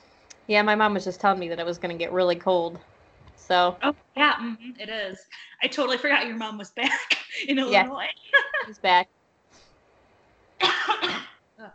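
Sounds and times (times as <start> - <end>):
speech: 0.5 - 9.2
harsh raspy cough: 10.6 - 11.4.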